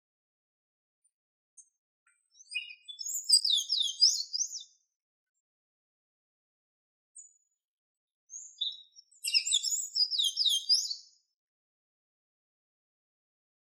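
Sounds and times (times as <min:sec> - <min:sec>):
golden-chevroned tanager giving very high squeaky tumbling twitter: 0:02.4 - 0:04.6, 0:08.6 - 0:11.0.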